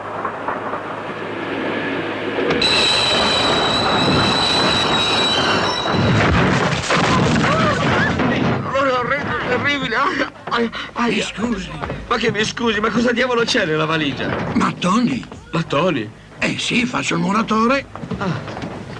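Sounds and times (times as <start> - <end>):
train rolling along rails: 0.0 - 18.9
high sustained metallic train wheel squeal: 2.5 - 6.2
speech: 10.6 - 18.5.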